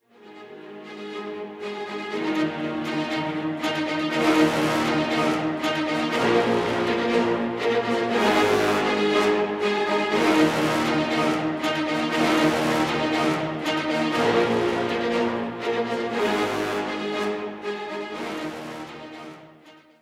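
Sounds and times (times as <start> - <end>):
strings playing: 0.1 - 19.7
brass playing: 4.0 - 19.4.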